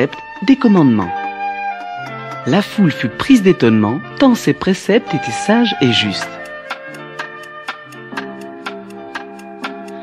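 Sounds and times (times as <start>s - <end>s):
speech: 0.0s - 1.2s, 2.4s - 6.4s
clock ticking: 4.2s - 10.0s.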